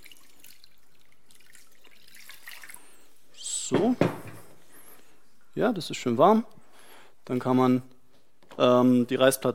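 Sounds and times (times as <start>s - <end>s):
cold and warm water splashing and trickling into a bowl: 0.0s - 3.2s
speech: 3.7s - 4.1s, 5.6s - 6.6s, 7.3s - 7.9s, 8.6s - 9.5s.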